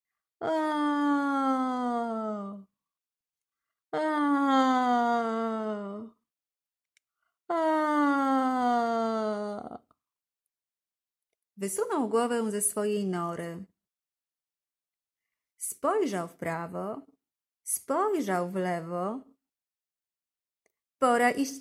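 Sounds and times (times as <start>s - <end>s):
speech: 0.4s - 0.7s, 11.6s - 13.7s, 15.9s - 19.3s, 21.0s - 21.5s
human voice yawning with a descending groaning tone: 0.4s - 2.6s, 4.0s - 6.1s, 7.5s - 9.8s.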